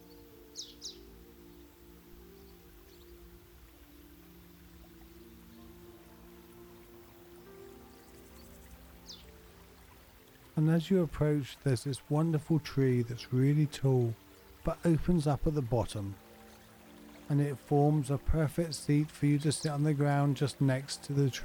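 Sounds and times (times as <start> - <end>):
bird chirps: 0.0 - 1.7, 4.6 - 9.4
small river flowing in the distance: 0.0 - 21.4
speech: 10.6 - 16.2, 17.3 - 21.4.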